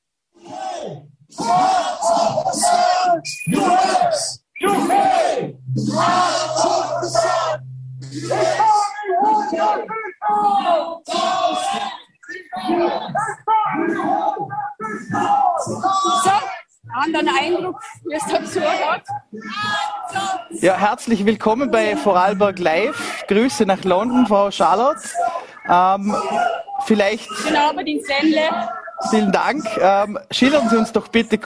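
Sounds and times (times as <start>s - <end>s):
crowd of protesters shouting: 0.4s - 20.7s, 21.6s - 31.0s
speech: 3.1s - 4.4s, 20.6s - 31.4s
low droning tone: 5.4s - 9.7s.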